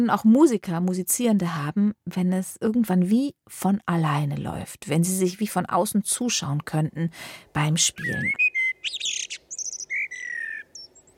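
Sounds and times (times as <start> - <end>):
speech: 0.0 - 9.1
songbird singing chirps whistles and trills: 7.8 - 11.1.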